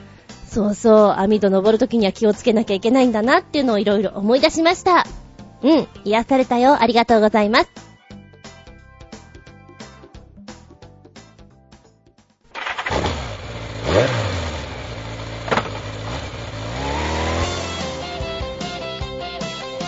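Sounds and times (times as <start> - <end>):
speech: 0.5 - 7.9
motorcycle engine cranking, starting, idling and revving: 12.5 - 19.0.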